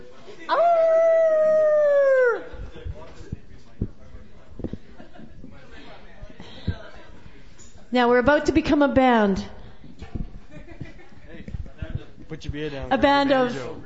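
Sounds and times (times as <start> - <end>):
group of people howling like wolves at an open mic night: 0.5 - 2.6
laughter: 4.6 - 7.1, 10.4 - 12.2, 13.7 - 13.8
speech: 7.9 - 9.6, 12.6 - 13.8.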